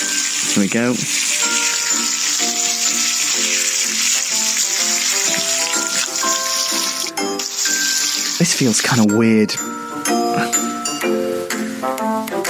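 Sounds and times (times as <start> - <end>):
shower water spraying: 0.0 - 9.1
light melodic tune: 0.0 - 12.4
speech: 0.5 - 1.2, 8.6 - 10.2.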